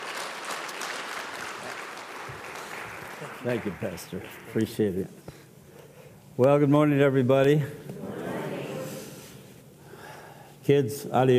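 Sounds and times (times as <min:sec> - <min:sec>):
audience applause: 0:00.0 - 0:04.6
speech: 0:03.4 - 0:05.3, 0:06.4 - 0:07.9, 0:10.7 - 0:11.3.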